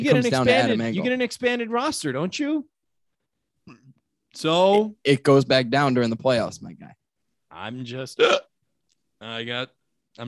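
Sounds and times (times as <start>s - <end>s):
speech: 0.0s - 2.8s, 4.4s - 7.0s, 7.6s - 8.5s, 9.2s - 10.2s
hiccup: 8.2s - 8.5s.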